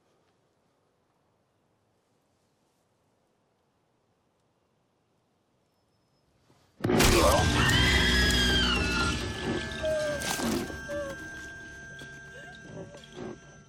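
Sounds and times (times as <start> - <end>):
rearing goat crying: 7.4 - 11.5.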